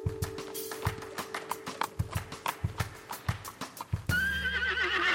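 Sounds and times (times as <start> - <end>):
horse's hooves clip-clopping: 0.1 - 5.1
horse neighing: 4.1 - 5.1.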